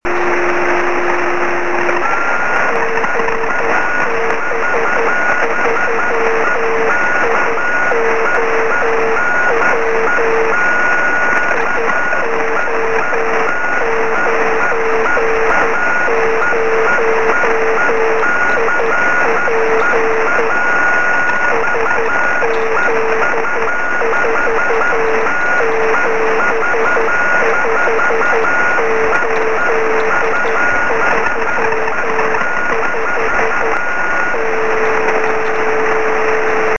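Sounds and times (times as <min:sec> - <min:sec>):
23cm band radio beacon signal: 0:00.0 - 0:36.7.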